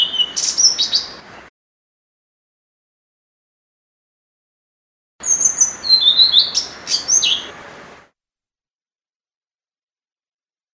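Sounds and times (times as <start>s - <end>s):
blue-throated flycatcher singing: 0.0s - 1.4s, 5.2s - 7.8s.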